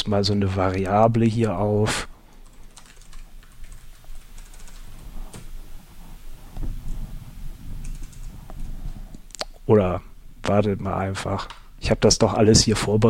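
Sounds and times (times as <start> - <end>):
speech: 0.1 - 2.1, 9.7 - 13.0
typing on a computer keyboard while programming: 2.3 - 5.4, 7.8 - 8.3.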